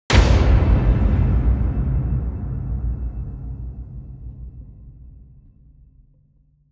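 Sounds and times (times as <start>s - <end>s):
cinematic impact echo: 0.1s - 6.4s.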